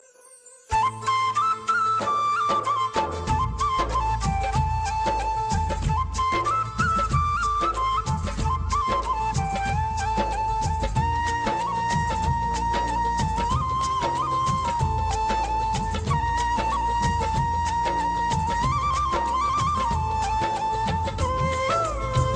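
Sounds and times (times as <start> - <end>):
flute ringtone: 0.1 - 22.3.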